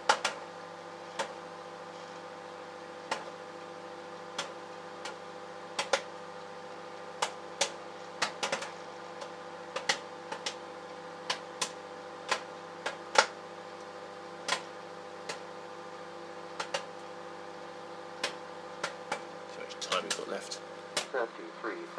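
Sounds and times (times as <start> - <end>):
popcorn popping inside a running microwave oven: 0.0 - 0.4, 4.2 - 6.1, 7.0 - 15.6, 16.4 - 17.0, 18.2 - 21.1
microwave oven steady electrical hum: 0.0 - 21.9
speech: 20.3 - 21.9.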